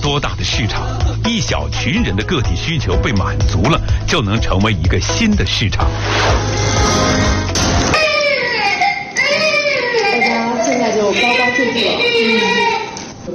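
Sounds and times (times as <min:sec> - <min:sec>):
speech: 0:00.1 - 0:07.7, 0:11.1 - 0:12.8
baby crying: 0:07.9 - 0:13.0.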